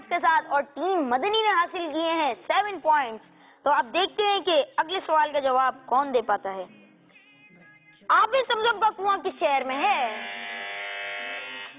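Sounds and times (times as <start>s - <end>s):
speech: 0.3s - 6.8s, 8.1s - 10.4s
quiz buzzer being pressed: 10.0s - 11.7s.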